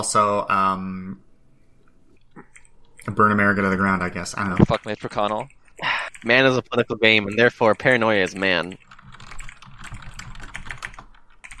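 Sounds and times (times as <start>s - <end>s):
speech: 0.0s - 1.2s, 3.1s - 8.9s
typing on a computer keyboard: 4.1s - 11.5s.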